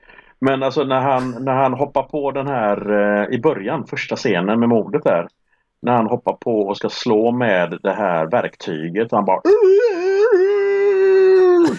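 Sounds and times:
speech: 0.4 - 10.0
single voice imitating a wild jungle yell: 9.4 - 11.7.

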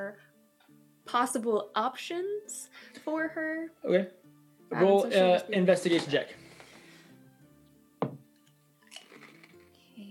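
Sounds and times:
speech: 1.1 - 6.4
food crunching while eating: 8.8 - 9.8.

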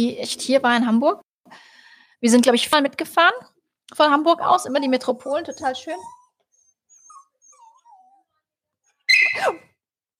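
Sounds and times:
speech: 0.0 - 1.6, 2.2 - 6.2, 9.4 - 9.7
small dog whimpering and squeaking: 5.2 - 8.4.

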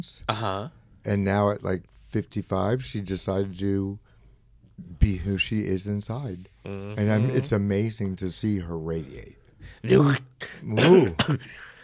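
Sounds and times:
speech: 0.0 - 4.0, 4.8 - 11.6
person coughing with throaty harrumphing sounds: 10.4 - 11.6.

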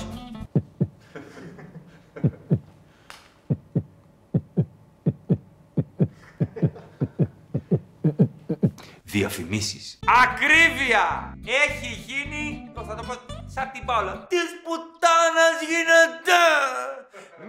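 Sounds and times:
dramatic synthetic heartbeat thumping: 0.4 - 1.0, 2.2 - 2.7, 3.5 - 8.8
laughter: 1.0 - 2.7, 6.0 - 7.4
speech: 9.2 - 16.9.

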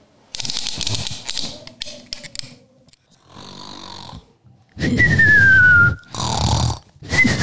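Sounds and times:
loud heavy snoring: 3.2 - 7.4
high sliding whistle on the exhale: 4.8 - 7.4.

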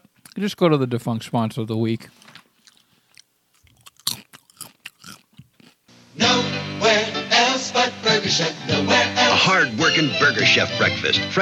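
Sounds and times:
speech: 0.4 - 2.3, 9.6 - 11.4
wet mouth sounds: 2.0 - 5.8
crunchy chewing while comfort eating: 2.0 - 5.9
loud music: 6.2 - 11.4.

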